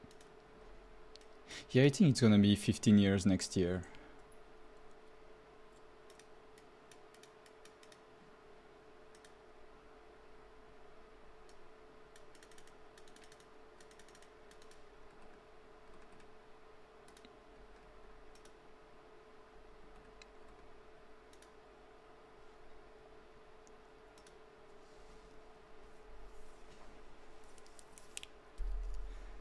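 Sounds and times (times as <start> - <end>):
low electrical hum: 0.0 - 29.3
speech: 1.6 - 4.0
typing on a computer keyboard: 6.9 - 8.0, 11.5 - 16.3, 17.1 - 18.6.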